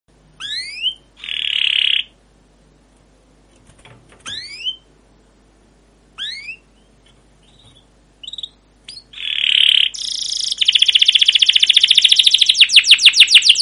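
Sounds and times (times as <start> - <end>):
canary song with rising whistles, buzzy bursts and rolling chirps: 0.1 - 2.3, 4.2 - 5.0, 6.1 - 13.6.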